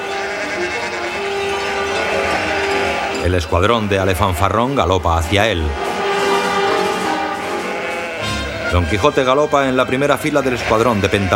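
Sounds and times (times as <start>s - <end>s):
flock of sheep and rams bleating: 0.0s - 9.1s, 10.0s - 11.3s
speech: 3.2s - 5.8s, 8.7s - 11.3s.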